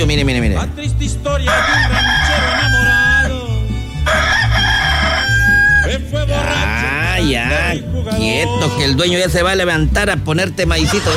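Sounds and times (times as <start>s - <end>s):
speech: 0.0s - 2.2s, 6.0s - 11.1s
rooster crowing: 1.5s - 6.0s.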